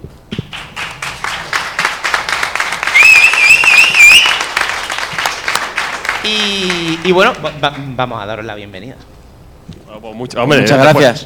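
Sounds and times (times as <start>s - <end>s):
audience applause: 0.5s - 8.1s
long piercing whistle: 2.8s - 4.6s
speech: 6.3s - 9.1s, 9.7s - 11.2s.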